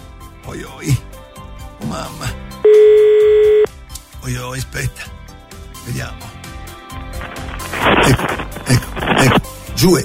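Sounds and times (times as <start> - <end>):
speech: 0.5 - 1.1, 1.9 - 2.4, 4.2 - 5.2, 5.9 - 6.3, 8.1 - 10.0
telephone ringing tone while placing a call: 2.6 - 3.7.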